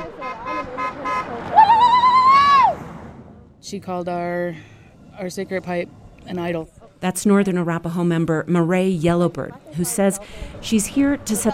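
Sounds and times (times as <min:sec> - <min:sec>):
passing car horns tooting and honking: 0:00.0 - 0:01.5
murmur of street noise: 0:00.0 - 0:03.7, 0:04.5 - 0:11.5
speech: 0:03.7 - 0:11.5.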